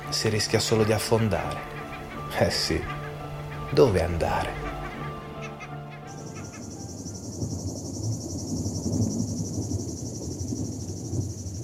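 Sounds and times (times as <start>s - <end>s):
cicadas chirping among woods and rocks on an uphill climb: 0.0s - 11.6s
low rumbling, rustling background: 0.0s - 11.6s
speech: 0.1s - 3.0s, 3.7s - 4.6s.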